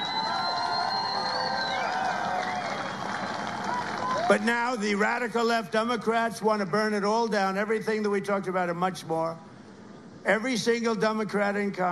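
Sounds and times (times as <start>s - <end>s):
applause: 0.0s - 4.8s
big rally crowd cheering: 0.0s - 4.8s
speech: 4.3s - 9.5s, 10.2s - 11.9s.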